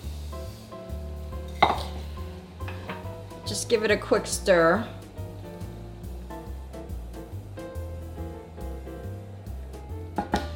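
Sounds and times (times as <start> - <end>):
quinoa and amaranth grains tipped into a pot of boiling water: 1.5 - 3.5
speech: 3.5 - 5.0.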